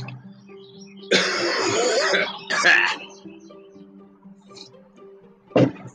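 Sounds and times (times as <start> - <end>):
person coughing: 1.1 - 2.9
harsh raspy throat clearing caused by allergies: 1.1 - 3.0.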